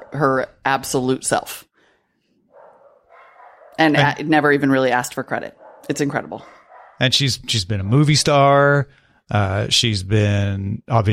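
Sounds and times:
speech: 0.1 - 1.7, 3.8 - 11.1
dog barking: 2.5 - 4.0, 5.5 - 7.1.

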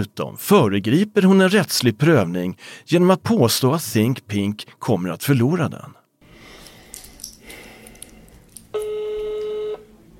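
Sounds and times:
speech: 0.0 - 6.0
faint fumbling: 6.4 - 8.8
telephone ringing tone on the line: 8.7 - 9.9.

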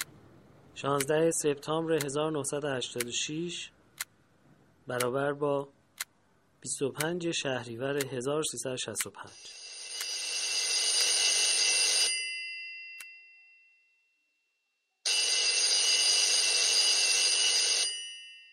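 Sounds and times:
speech: 0.8 - 3.8, 4.8 - 5.8, 6.6 - 9.6
old-fashioned telephone bell ringing: 9.4 - 13.3, 15.1 - 18.5.

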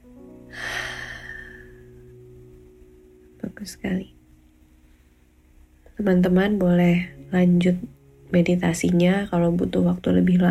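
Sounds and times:
long breathy exhale through an open mouth during a guided meditation: 0.5 - 1.9
speech: 3.4 - 4.2, 6.0 - 10.5.

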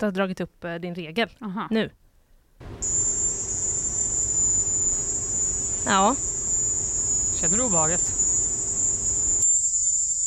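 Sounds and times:
speech: 0.0 - 2.0, 5.8 - 6.3, 7.4 - 8.2
high-pitched insect drone of cicadas or crickets: 2.6 - 10.2.

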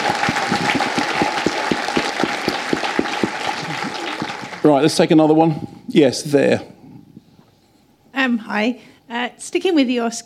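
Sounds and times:
room full of people clapping: 0.0 - 5.2
speech: 4.6 - 6.7, 8.3 - 10.2.

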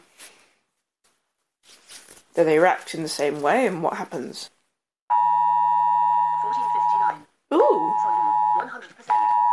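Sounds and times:
speech: 2.4 - 4.6
phone emergency alert tone: 5.1 - 9.5.

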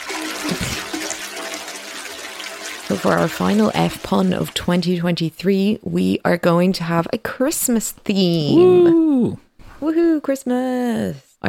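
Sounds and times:
toilet flushing: 0.0 - 5.2
speech: 2.9 - 11.4.

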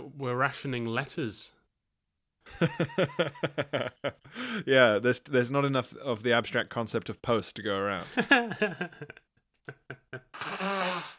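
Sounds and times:
speech: 0.2 - 1.6, 2.5 - 11.1
nose blowing: 10.3 - 11.1.

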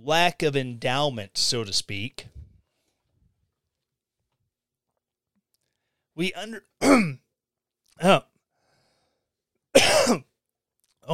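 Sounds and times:
speech: 0.0 - 2.3, 6.2 - 7.2, 8.0 - 8.3, 9.8 - 10.3
person clearing the throat and coughing: 6.8 - 7.3, 9.7 - 10.4.

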